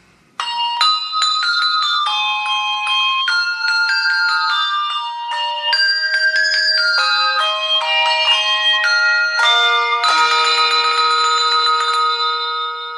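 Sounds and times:
Christmas bells chiming a slow holiday carol melody in a television commercial: 0.4s - 12.9s.

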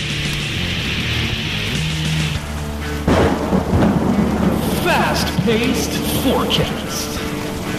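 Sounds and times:
hissing rain: 0.0s - 7.7s
loud crack of thunder rumbling: 1.1s - 7.7s
voices: 4.4s - 7.4s
speech: 5.2s - 7.2s.

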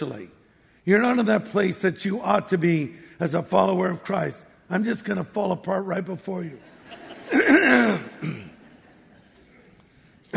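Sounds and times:
speech: 0.0s - 6.7s
laughter: 6.6s - 9.8s
man clearing his throat: 7.3s - 8.6s.

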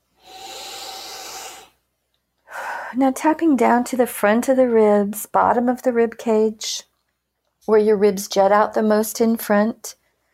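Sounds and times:
big deep breath: 0.0s - 1.8s, 2.5s - 3.0s
speech: 2.9s - 6.9s, 7.7s - 10.0s.

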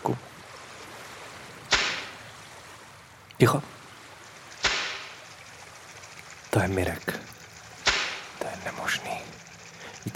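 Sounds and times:
hand slapping water at a fishing spot: 1.7s - 2.2s, 4.6s - 5.2s
brief fizzing water spray: 1.7s - 2.4s, 4.2s - 10.1s
speech: 3.4s - 3.8s, 6.6s - 7.2s.

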